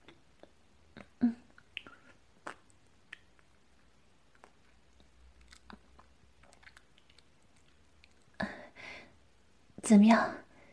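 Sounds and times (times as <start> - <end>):
wet chewing with smacks and squishy bites: 0.0 - 8.4.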